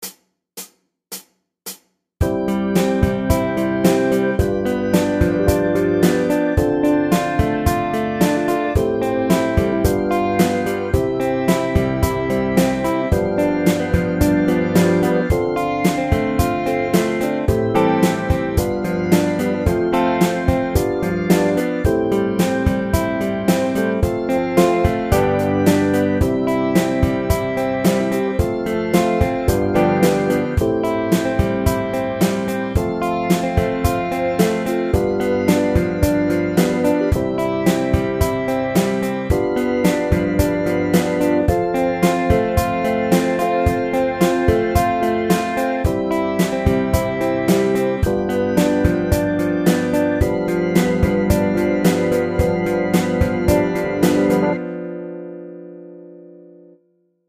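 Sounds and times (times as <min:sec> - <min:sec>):
backing track music: 0:02.2 - 0:56.8.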